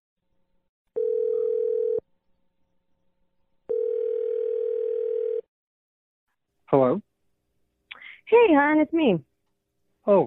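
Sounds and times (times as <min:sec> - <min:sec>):
long steady phone ringing tones: 0:01.0 - 0:02.0, 0:03.7 - 0:05.5
speech: 0:08.6 - 0:09.3, 0:10.1 - 0:10.2.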